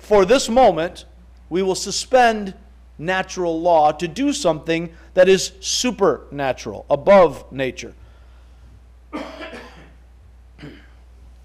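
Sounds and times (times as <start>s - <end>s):
low steady hum: 0.0s - 11.4s
speech: 0.1s - 8.0s, 9.1s - 9.4s
dry throat cough, not from sickness: 9.1s - 10.0s, 10.6s - 11.0s.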